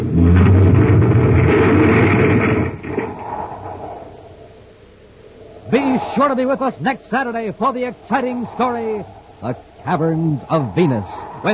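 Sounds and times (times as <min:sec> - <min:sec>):
car crashing into debris in a tunnel: 0:00.0 - 0:04.1
speech: 0:06.2 - 0:11.5.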